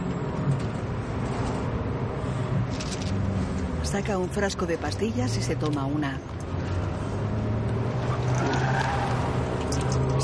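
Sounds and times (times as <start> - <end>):
Cadillac car engine and road noise driving through the city: 0.0 - 10.2
speech: 3.9 - 6.4.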